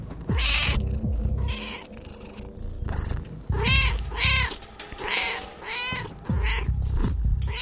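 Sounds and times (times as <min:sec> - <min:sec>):
cat meowing and yowling: 0:00.3 - 0:02.6, 0:03.5 - 0:06.8, 0:07.4 - 0:07.6.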